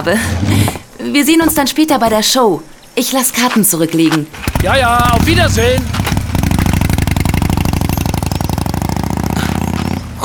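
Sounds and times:
speech: 0:00.0 - 0:06.1
motorcycle engine starting and riding away: 0:04.3 - 0:10.2.

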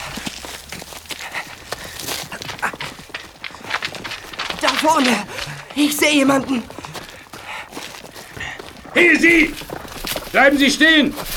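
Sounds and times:
thuds and rustles of someone climbing onto a horse: 0:00.0 - 0:05.7, 0:09.3 - 0:11.3
horse hoof steps shuffling: 0:00.0 - 0:11.3
speech: 0:04.8 - 0:06.8, 0:09.0 - 0:09.6, 0:10.3 - 0:11.3.

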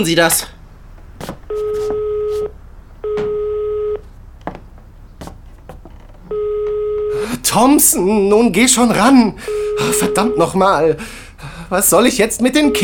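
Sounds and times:
speech: 0:00.0 - 0:00.6, 0:07.5 - 0:12.8
faint noise: 0:00.0 - 0:12.8
buzzing ring tones of a phone line ringing unanswered: 0:01.5 - 0:04.0, 0:06.3 - 0:07.3, 0:09.4 - 0:10.6.

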